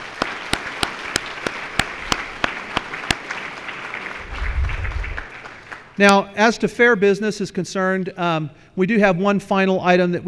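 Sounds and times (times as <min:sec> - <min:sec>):
sharp evenly spaced claps: 0:00.0 - 0:04.3
crowd applauding: 0:00.0 - 0:06.0
speech: 0:06.0 - 0:10.2.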